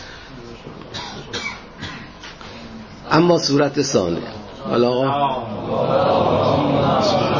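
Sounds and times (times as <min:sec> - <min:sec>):
person coughing harshly: 0:00.9 - 0:02.2
speech: 0:03.1 - 0:07.3.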